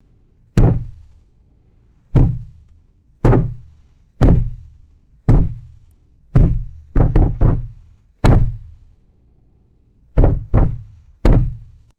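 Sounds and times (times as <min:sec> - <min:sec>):
heavy thudding impacts on wooden wall: 0:00.6 - 0:01.2, 0:02.1 - 0:08.9, 0:10.2 - 0:11.9.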